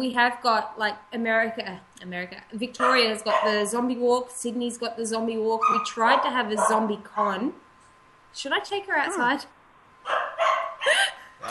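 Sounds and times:
speech: 0:00.0 - 0:07.6, 0:08.3 - 0:11.4
dog barking: 0:02.8 - 0:03.6, 0:05.6 - 0:07.4, 0:10.0 - 0:10.8.

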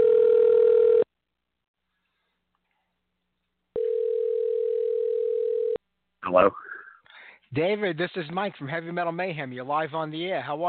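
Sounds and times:
telephone dial tone while a call is being placed: 0:00.0 - 0:01.1, 0:03.8 - 0:05.8
speech: 0:06.4 - 0:06.7, 0:07.5 - 0:10.6.

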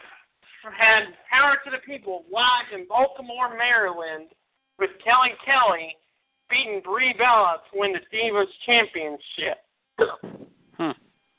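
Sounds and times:
speech: 0:00.6 - 0:11.0
sharp voiced hiccup: 0:10.0 - 0:11.0.

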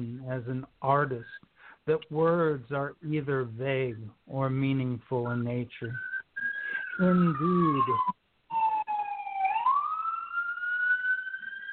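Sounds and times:
speech: 0:00.0 - 0:06.1, 0:07.0 - 0:08.2
passing emergency vehicle siren wailing: 0:06.0 - 0:11.7.

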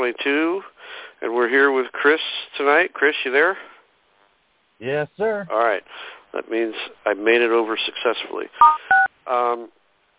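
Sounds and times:
speech: 0:00.0 - 0:03.7, 0:04.8 - 0:09.8
person's voice: 0:04.8 - 0:05.8
two-tone phone keypad button beep: 0:08.6 - 0:09.1.

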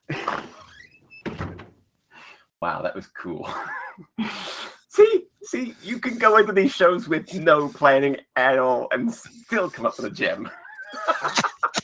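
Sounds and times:
store door creaking open: 0:00.2 - 0:01.8
store door closing with a solid thump and rattle: 0:01.2 - 0:01.8
speech: 0:02.6 - 0:11.5
laughter: 0:03.4 - 0:04.3, 0:09.9 - 0:11.8.

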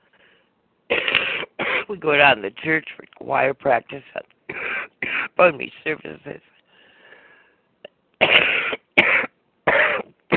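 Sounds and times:
person coughing harshly: 0:00.9 - 0:02.0, 0:04.5 - 0:05.4, 0:08.2 - 0:10.3
speech: 0:01.9 - 0:04.6, 0:05.4 - 0:06.6.

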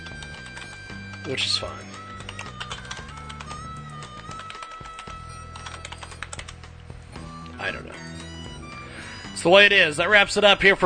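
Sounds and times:
typing on a computer keyboard: 0:00.0 - 0:01.2, 0:01.8 - 0:06.6
speech: 0:01.2 - 0:02.0, 0:07.6 - 0:08.2, 0:09.4 - 0:10.8.

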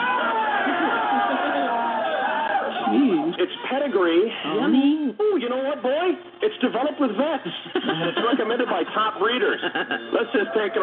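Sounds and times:
audience cheering and whooping: 0:00.0 - 0:02.9
laughter: 0:00.0 - 0:03.0, 0:07.5 - 0:10.8
speech: 0:03.4 - 0:10.8.

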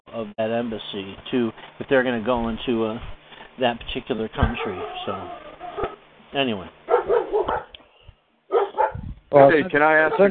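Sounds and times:
speech: 0:00.2 - 0:06.8, 0:09.3 - 0:10.2
dogs barking in short loud bursts: 0:04.4 - 0:06.0, 0:06.8 - 0:07.8, 0:08.5 - 0:09.2, 0:10.0 - 0:10.2.

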